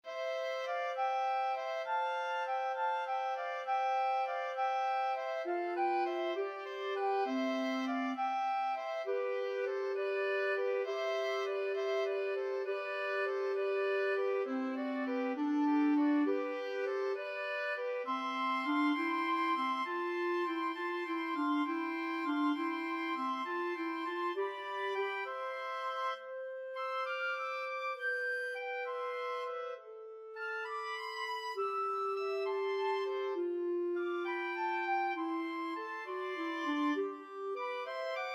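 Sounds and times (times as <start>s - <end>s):
clarinet playing a pastorale: 0.0s - 38.3s
flute playing a pastorale: 0.0s - 38.3s
oboe playing a pastorale: 0.0s - 38.3s.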